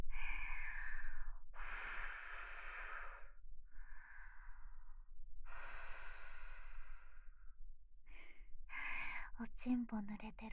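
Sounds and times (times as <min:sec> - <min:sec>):
gentle blowing breaths: 0:00.4 - 0:04.8, 0:05.5 - 0:07.5
speech: 0:09.4 - 0:10.5.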